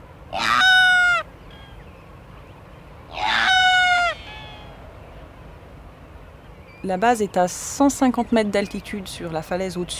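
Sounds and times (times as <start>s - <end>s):
faint wind-like background: 0.0s - 9.9s
sooty albatross calling on island cliffs: 0.3s - 1.9s, 3.1s - 4.8s
speech: 6.8s - 9.9s.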